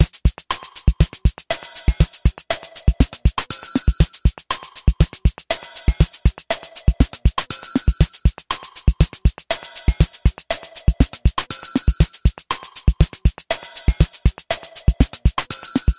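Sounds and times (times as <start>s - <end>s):
quad track complex background rhythm: 0.0s - 15.9s.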